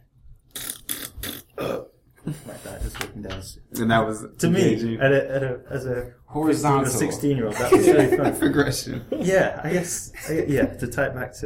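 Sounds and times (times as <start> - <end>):
voice imitating a burp: 0.6 - 2.0
speech: 2.3 - 11.4
laughter: 7.5 - 9.4, 10.2 - 10.9.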